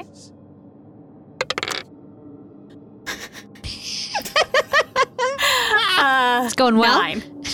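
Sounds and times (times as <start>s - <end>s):
dice clattering on a hard tabletop in a tabletop role-playing game: 1.4s - 1.8s
laughter: 3.1s - 6.2s
speech: 6.4s - 7.3s.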